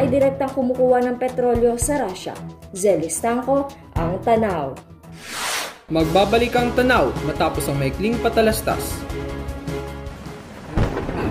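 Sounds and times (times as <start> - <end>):
speech: 0.1 - 9.2
thunder rumbling in a thunderstorm: 10.6 - 11.2.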